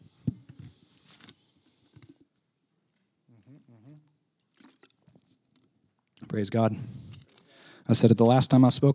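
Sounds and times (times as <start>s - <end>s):
sips and swallows of water: 3.3s - 6.3s
wet mouth clicks: 3.5s - 5.3s
speech: 6.4s - 7.0s, 7.9s - 8.9s
brief voiced exhale: 6.7s - 7.9s.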